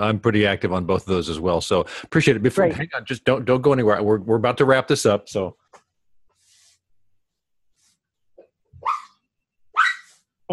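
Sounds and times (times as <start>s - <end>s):
speech: 0.0s - 5.6s
small terrier mutt dog barking sharply: 8.8s - 10.1s.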